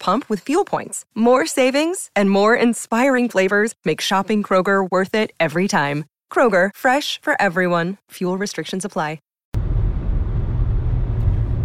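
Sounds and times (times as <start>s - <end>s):
speech: 0.0s - 9.3s
car driving westbound on a freeway road rumble: 9.6s - 11.6s.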